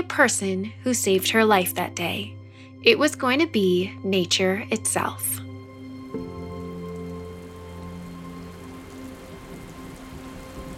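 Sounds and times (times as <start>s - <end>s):
speech: 0.1s - 5.4s
rain pattering on a surface: 5.6s - 10.7s.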